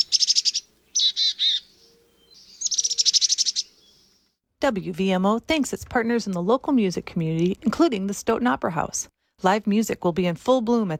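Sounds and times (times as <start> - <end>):
chickadee calling: 0.0 - 4.2
speech: 4.6 - 10.9.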